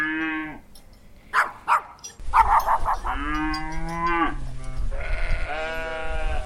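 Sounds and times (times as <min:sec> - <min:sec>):
cows mooing inside a barn on a dairy farm: 0:00.0 - 0:00.6, 0:02.8 - 0:06.4.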